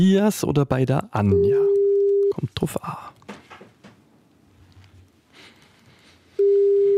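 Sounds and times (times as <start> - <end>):
speech: 0.0 - 1.6, 2.4 - 3.1
telephone ringing tone while calling: 1.3 - 2.4, 6.4 - 6.9.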